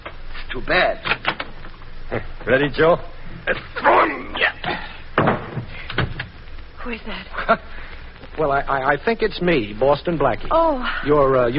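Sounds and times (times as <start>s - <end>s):
speech: 0.5s - 1.1s, 2.1s - 4.8s, 6.8s - 7.8s, 8.4s - 11.5s
door slamming shut with heavy thud: 5.2s - 6.3s.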